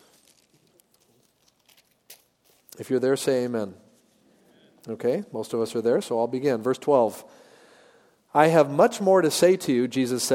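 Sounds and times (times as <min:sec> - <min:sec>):
many Bible pages being turned at once: 0:00.0 - 0:02.8
speech: 0:02.8 - 0:03.8, 0:04.8 - 0:07.4, 0:08.3 - 0:10.3.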